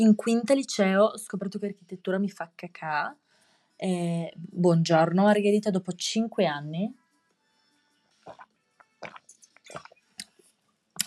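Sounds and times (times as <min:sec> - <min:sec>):
speech: 0:00.0 - 0:03.2, 0:03.8 - 0:07.0
person taking a quiet sip of a drink: 0:08.2 - 0:11.0
gulping swallows: 0:08.3 - 0:10.4.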